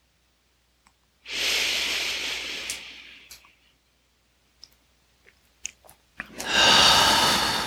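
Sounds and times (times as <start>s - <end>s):
forceful exhale during a breathing exercise: 1.3s - 3.3s, 6.4s - 7.6s
soft clicks and quiet mouth sounds: 2.6s - 3.6s, 4.6s - 6.6s.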